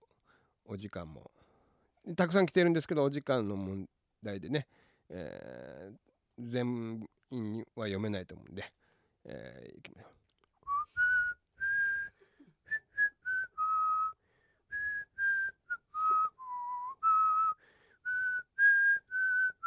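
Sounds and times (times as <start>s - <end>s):
speech: 0.7s - 1.4s, 2.0s - 10.2s
person whistling a melodic tune: 10.6s - 19.6s.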